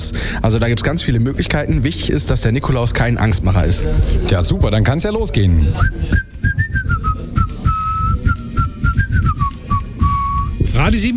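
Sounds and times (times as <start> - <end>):
busy low rumbling background: 0.0 - 8.0
speech: 0.4 - 6.7, 10.8 - 11.1
person whistling a wavering off-pitch tune: 5.8 - 10.8.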